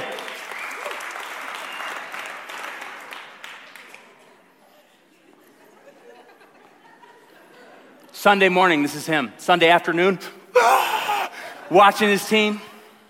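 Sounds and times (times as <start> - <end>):
large audience applause: 0.0 - 4.2
laughter: 4.9 - 8.1
speech: 8.2 - 10.8, 11.7 - 12.7.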